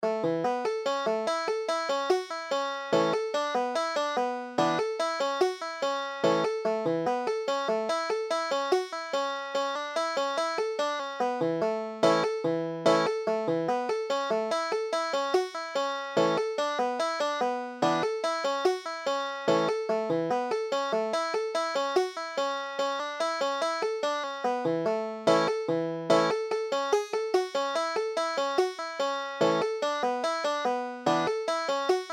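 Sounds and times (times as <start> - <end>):
banjo playing: 0.0 - 32.1.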